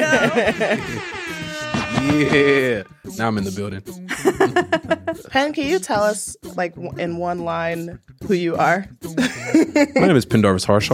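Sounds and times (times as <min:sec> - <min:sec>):
laughter: 0:00.0 - 0:01.2, 0:04.1 - 0:05.3, 0:09.2 - 0:10.2
loud sustained air horn blast: 0:00.0 - 0:03.3
speech: 0:00.1 - 0:01.2, 0:01.9 - 0:10.9.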